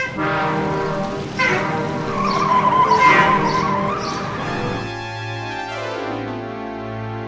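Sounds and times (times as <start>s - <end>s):
semi truck low engine rumble: 0.0s - 5.4s
semi truck tires screeching while swerving: 0.0s - 5.6s.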